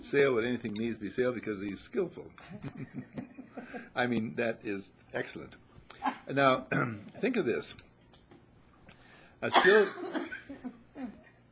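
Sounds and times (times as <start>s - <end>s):
speech: 0.1s - 7.9s, 9.4s - 10.2s
audience member coughing: 6.7s - 7.1s, 9.4s - 10.4s.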